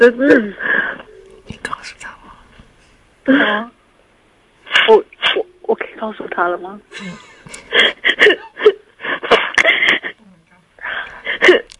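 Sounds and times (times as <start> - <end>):
speech: 0.0 - 0.7, 3.2 - 3.8, 4.7 - 8.8
person sobbing with wheezy gasping breaths: 6.9 - 10.2, 11.2 - 11.7.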